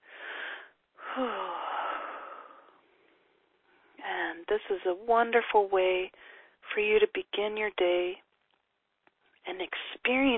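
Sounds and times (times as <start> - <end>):
big deep breath drawn for relaxation: 0.0 - 4.0, 6.2 - 6.6
speech: 1.2 - 1.4, 4.5 - 8.2, 9.4 - 10.3.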